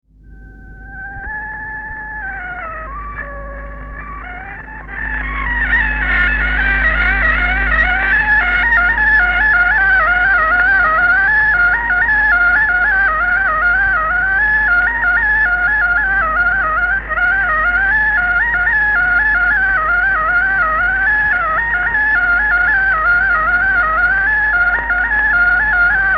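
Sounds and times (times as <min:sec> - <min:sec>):
Estonian torupill bagpipe folk music from Kuusalu: 0:00.2 - 0:26.1.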